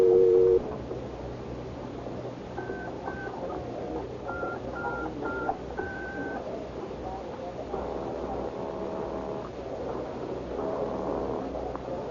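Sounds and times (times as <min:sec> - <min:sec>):
faint hiss: 0:00.0 - 0:12.0
pay phone touch-tone dialing beeps: 0:04.3 - 0:06.4.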